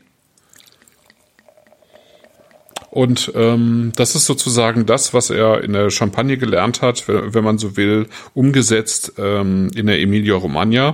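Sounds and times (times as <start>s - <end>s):
rosé wine poured into a glass: 0.3s - 4.6s
speech: 2.9s - 10.9s.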